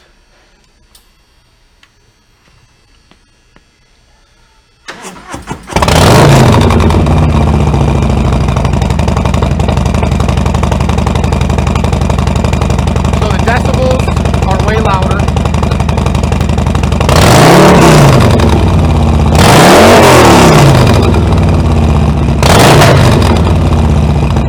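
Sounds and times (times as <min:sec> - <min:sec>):
Harley-Davidson motorcycle with Bassani 2-in-1 exhaust and Stage 2 cam idling: 0:05.0 - 0:24.4.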